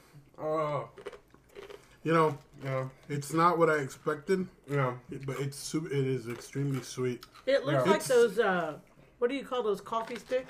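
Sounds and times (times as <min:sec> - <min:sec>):
chewing of little crunchy snacks: 0:00.6 - 0:07.5
speech: 0:02.0 - 0:10.4.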